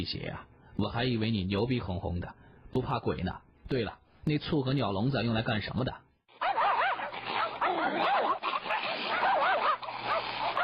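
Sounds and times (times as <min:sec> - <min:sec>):
speech: 0:00.0 - 0:06.0
pack of hunting dogs barking furiously on a hillside: 0:06.4 - 0:10.6.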